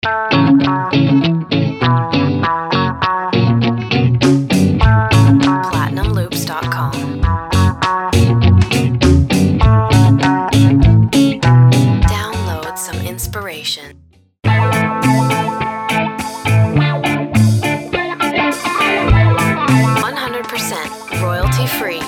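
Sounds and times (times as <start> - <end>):
ska guitar loops: 0.0 - 12.6, 14.4 - 22.0
voice: 5.6 - 7.1, 12.1 - 13.9, 20.0 - 22.0.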